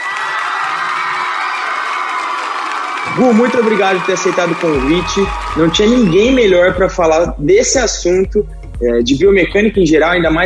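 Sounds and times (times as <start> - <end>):
excited shouts: 0.0 - 6.8
crowd cheering and applause: 0.0 - 7.1
speech: 3.2 - 10.4.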